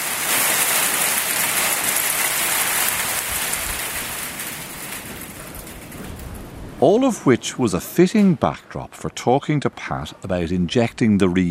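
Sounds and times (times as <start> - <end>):
heavy hail shower outside Tuam on a windy day: 0.0 - 8.5
speech: 6.8 - 11.4.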